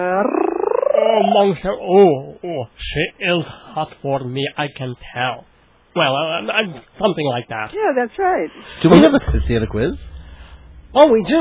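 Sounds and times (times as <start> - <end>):
person imitating a cat purring with a voiced rolling trill: 0.0 - 1.6
speech: 1.0 - 10.2, 10.9 - 11.3.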